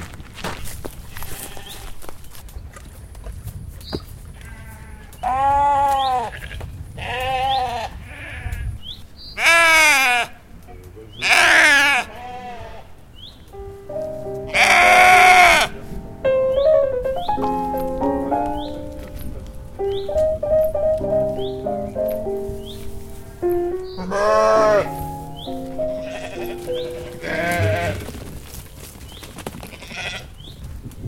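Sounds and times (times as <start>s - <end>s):
shuffling footsteps: 0.0s - 4.9s, 13.5s - 15.0s, 15.8s - 30.8s
flock of ewes bleating: 4.4s - 8.6s, 9.4s - 10.4s, 11.2s - 12.9s, 14.5s - 15.8s, 23.9s - 28.1s, 29.7s - 30.3s
rustling: 17.1s - 24.1s, 24.9s - 30.7s.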